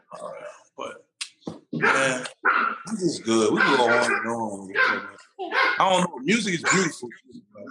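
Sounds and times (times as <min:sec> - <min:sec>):
speech: 0:00.1 - 0:00.9, 0:01.8 - 0:07.2
dogs barking and growling while play fighting: 0:01.7 - 0:07.0.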